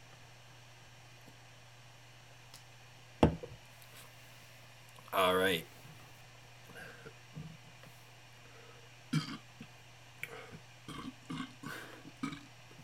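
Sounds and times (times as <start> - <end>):
low steady hum: 0.0 - 12.8
speech: 5.2 - 5.7
small soft burps after drinking beer: 9.1 - 9.7, 10.9 - 12.5.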